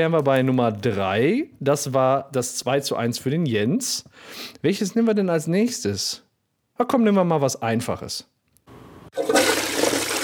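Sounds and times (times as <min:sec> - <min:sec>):
speech: 0:00.0 - 0:06.2, 0:06.8 - 0:08.3
toilet flushing: 0:09.2 - 0:10.2.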